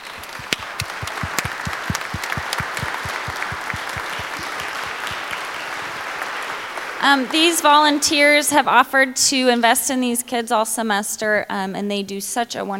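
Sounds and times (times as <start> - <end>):
sharper individual claps: 0.0 - 7.4
church audience applauding: 0.0 - 8.4
speech: 7.0 - 12.7.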